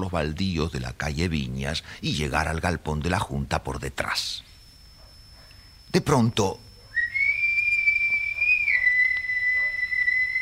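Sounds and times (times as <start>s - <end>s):
speech: 0.0s - 4.5s, 5.9s - 6.6s
long high whistle signal call: 6.8s - 10.4s.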